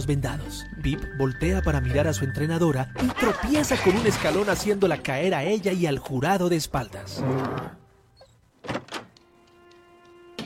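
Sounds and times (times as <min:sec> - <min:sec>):
speech: 0:00.0 - 0:07.8
door clunks: 0:08.6 - 0:09.2.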